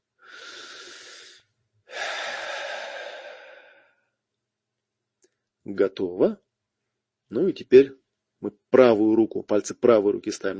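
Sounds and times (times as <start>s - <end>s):
deep breath in and out: 0.2s - 4.1s
speech: 5.7s - 6.4s, 7.3s - 10.5s.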